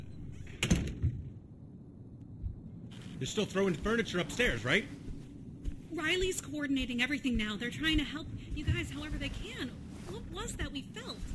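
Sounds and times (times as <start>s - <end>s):
door being pushed shut: 0.4s - 1.3s
speech: 3.2s - 5.0s, 6.0s - 11.3s.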